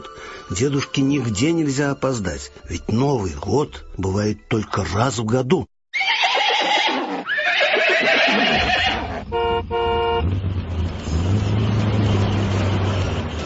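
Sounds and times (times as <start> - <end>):
speech: 0.5 - 5.7
horses of a three-horse troika whinnying: 5.9 - 9.2
truck engine rumbling: 9.0 - 13.4
truck horn honking: 9.2 - 10.4.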